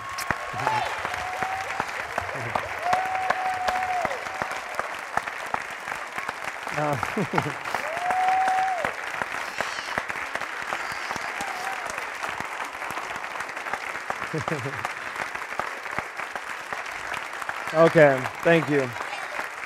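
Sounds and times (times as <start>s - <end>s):
crowd whooping: 0.0s - 13.2s
sustained applause from a large audience: 0.0s - 19.6s
laughter: 6.7s - 7.9s, 14.2s - 14.9s
speech: 6.8s - 7.8s, 14.3s - 15.0s, 17.7s - 19.0s.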